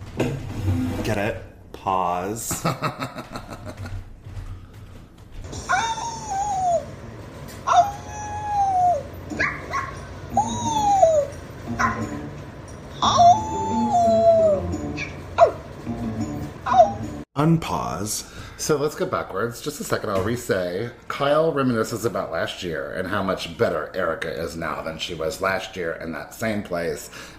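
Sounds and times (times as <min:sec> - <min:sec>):
speech: 0:00.8 - 0:04.1, 0:17.4 - 0:27.3
laughter: 0:02.5 - 0:04.0
dogs whining and whimpering: 0:05.6 - 0:12.4, 0:13.0 - 0:15.7, 0:16.7 - 0:17.2.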